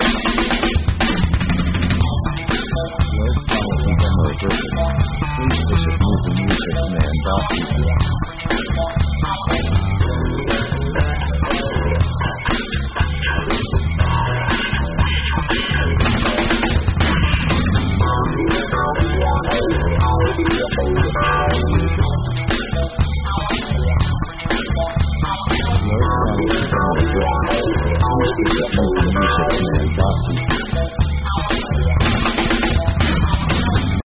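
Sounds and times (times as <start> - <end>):
funk rock music in E minor at 120 bpm: 0.0 - 34.0.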